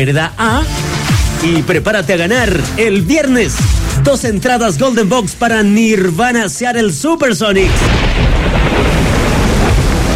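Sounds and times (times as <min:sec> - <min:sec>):
speech: 0:00.0 - 0:09.0
loud steady downpour of rain: 0:07.6 - 0:10.1.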